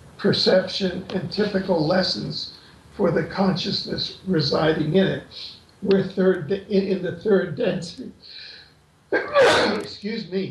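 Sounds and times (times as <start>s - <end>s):
speech: 0.2s - 8.4s, 9.1s - 10.5s
sneeze: 9.2s - 10.0s.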